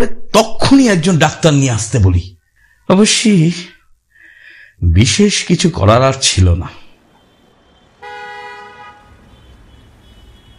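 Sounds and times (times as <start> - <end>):
speech: 0.0 - 3.7, 4.8 - 6.8
low road rumble of an arriving car: 6.9 - 10.5
car horn toot: 7.0 - 10.5.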